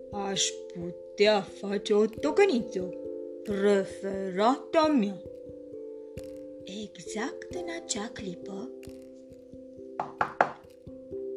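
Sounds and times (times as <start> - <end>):
soft steady musical hum: 0.0 - 10.0
speech: 0.1 - 5.3, 6.2 - 9.0
quick firm knocks on a door: 10.0 - 10.7.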